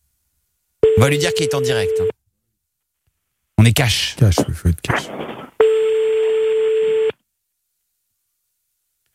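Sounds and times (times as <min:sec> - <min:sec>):
telephone tone as a call is placed: 0:00.8 - 0:02.1, 0:05.6 - 0:07.2
speech: 0:01.0 - 0:02.2, 0:03.6 - 0:05.4.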